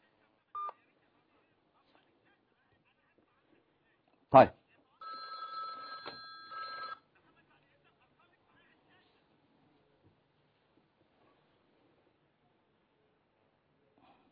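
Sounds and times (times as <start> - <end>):
telephone keypad tone: 5.0 - 7.0.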